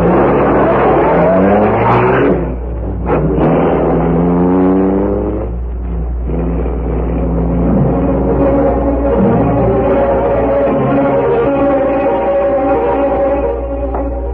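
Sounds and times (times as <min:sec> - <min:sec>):
car engine revving and driving away: 0:00.0 - 0:14.3.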